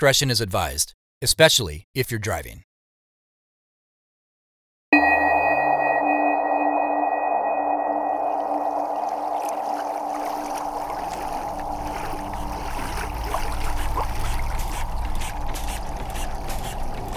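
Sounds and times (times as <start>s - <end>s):
speech: 0.0s - 2.7s
old boat engine with large pipes, valves and wheels droning and whining: 5.0s - 17.1s
churning wash of water under a boat: 8.0s - 17.1s.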